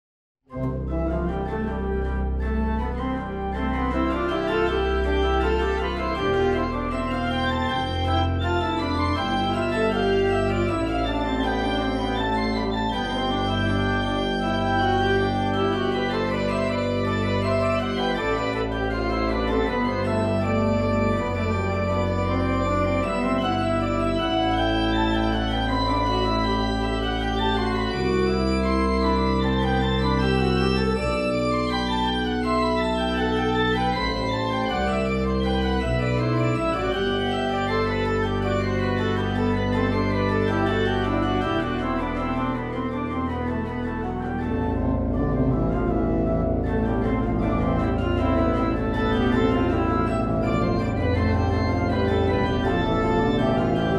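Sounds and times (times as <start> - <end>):
organ prelude: 0.5 - 53.9.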